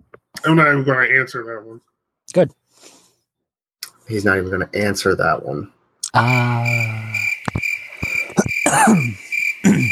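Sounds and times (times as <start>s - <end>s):
speech: 0.4s - 3.0s, 4.1s - 7.1s, 8.7s - 9.9s
chorus of crickets chirping: 6.1s - 9.9s.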